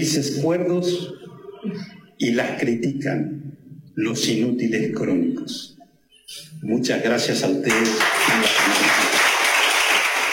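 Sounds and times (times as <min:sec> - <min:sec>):
speech: 0:00.0 - 0:05.7, 0:06.3 - 0:09.2
audience applause after a speech: 0:07.7 - 0:10.3.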